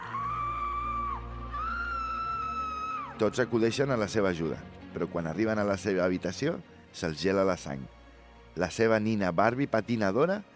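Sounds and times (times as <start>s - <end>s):
girl screaming: 0.0s - 3.2s
speech: 3.2s - 8.0s, 8.6s - 10.5s.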